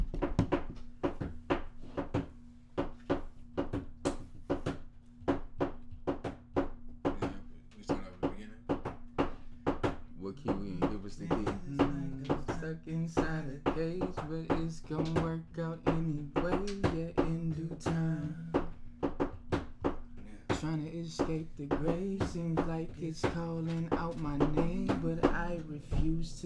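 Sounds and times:
beat tapped and thumped out on a tabletop: 0:00.0 - 0:26.4
speech: 0:10.4 - 0:11.9, 0:12.6 - 0:18.4, 0:20.6 - 0:26.4.

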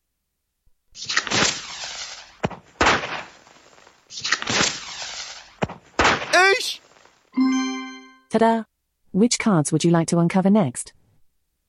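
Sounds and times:
fireworks crackling and fizzing: 0:01.0 - 0:07.4
speech: 0:08.3 - 0:11.0.

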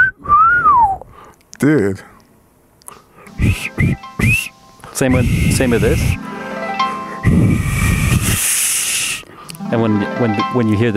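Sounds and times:
person whistling a single sliding note: 0:00.0 - 0:01.0, 0:03.3 - 0:09.6
speech: 0:01.6 - 0:02.1, 0:03.4 - 0:06.4, 0:07.3 - 0:07.9, 0:09.7 - 0:10.9.

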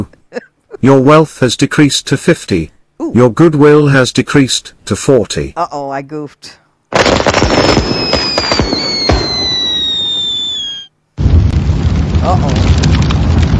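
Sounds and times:
speech: 0:00.8 - 0:08.4, 0:12.2 - 0:12.6
holiday fireworks sharp pops and bangs: 0:06.9 - 0:13.5
whistling firework rockets: 0:07.1 - 0:10.9.

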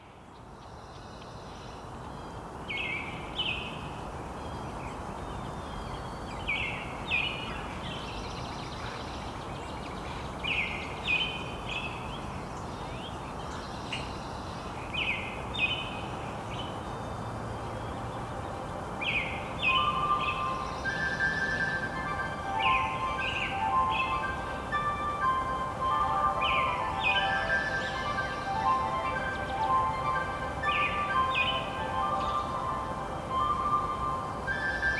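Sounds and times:
many birds singing in an open outdoor setting: 0:00.0 - 0:34.9.

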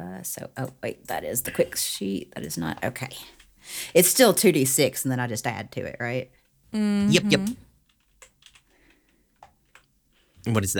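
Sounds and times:
speech: 0:00.2 - 0:07.7, 0:10.4 - 0:10.7
typing on a computer keyboard: 0:07.8 - 0:09.9.

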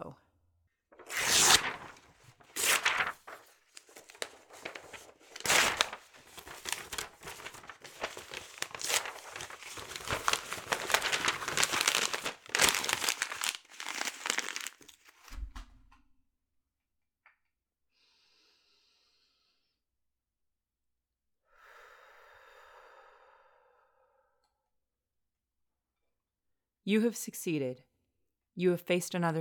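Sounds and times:
sheet of paper being crumpled and torn: 0:01.0 - 0:15.3
speech: 0:26.9 - 0:27.9, 0:28.6 - 0:29.3.

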